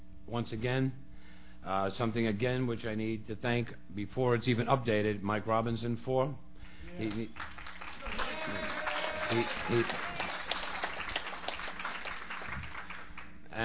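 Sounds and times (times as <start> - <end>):
speech: 0.3 - 8.6, 9.3 - 10.1
crowd applauding: 7.0 - 13.4.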